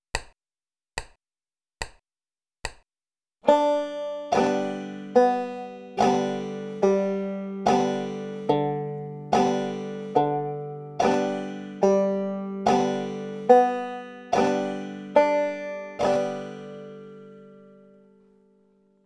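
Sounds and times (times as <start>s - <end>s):
basic picking stroke and climbing across strings: 3.5s - 18.1s.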